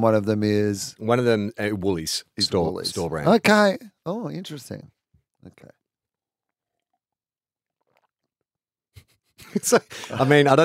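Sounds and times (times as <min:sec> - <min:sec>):
speech: 0:00.0 - 0:05.8, 0:09.5 - 0:10.6
wet squelching mouth sounds: 0:07.8 - 0:08.4.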